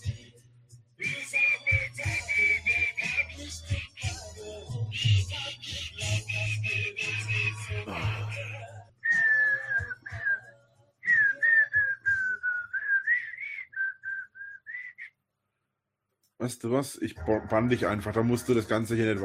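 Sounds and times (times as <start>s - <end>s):
person whistling a tune with pursed lips: 1.0s - 15.2s
speech: 16.4s - 19.2s.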